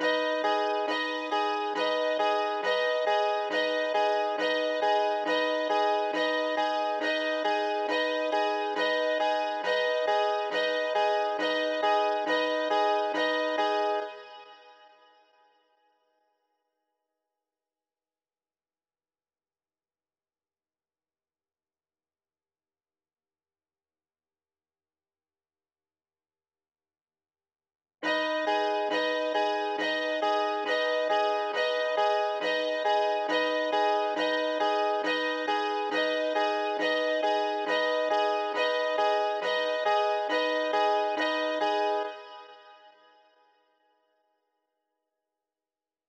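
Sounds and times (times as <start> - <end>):
piano main melody in G sharp minor: 0.0 - 14.4, 28.0 - 42.8.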